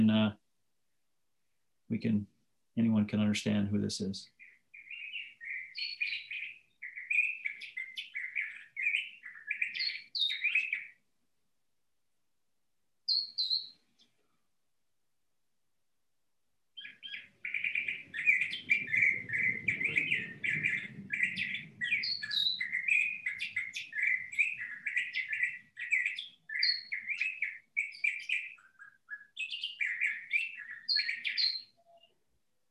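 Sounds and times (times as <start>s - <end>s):
speech: 0.0s - 0.4s, 1.9s - 4.4s
pet bird chirping: 1.9s - 11.1s, 13.0s - 14.5s, 16.7s - 32.3s.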